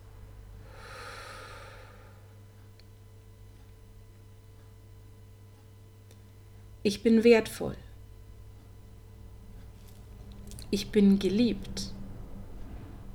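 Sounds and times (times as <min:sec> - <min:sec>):
low steady hum: 0:00.0 - 0:13.1
deep inhale through nose and exhale through mouth: 0:00.6 - 0:02.4
speech: 0:06.8 - 0:07.8, 0:10.7 - 0:11.9.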